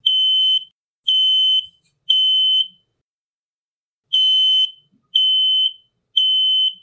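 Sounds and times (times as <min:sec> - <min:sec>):
smoke detector alarm in a house foyer beeping from burned pancake smoke: 0:00.0 - 0:02.8, 0:04.1 - 0:06.8.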